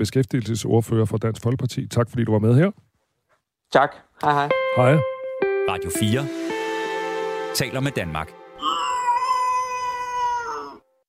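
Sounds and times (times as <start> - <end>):
speech: 0.0 - 2.9, 3.7 - 5.1, 5.7 - 6.5, 7.6 - 8.7
cat meowing with a wailing baby-like cry: 8.6 - 10.8.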